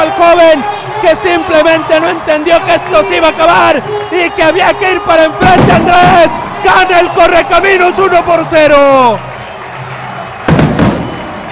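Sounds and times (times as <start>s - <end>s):
speech: 0.3s - 9.3s
firework explosions at the end of a football match: 5.4s - 6.9s, 10.4s - 11.5s.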